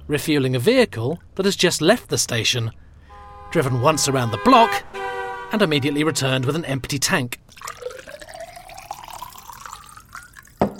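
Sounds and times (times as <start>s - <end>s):
speech: 0.1s - 2.8s, 3.5s - 7.8s
liquid pouring steadily into a small glass: 7.5s - 10.7s.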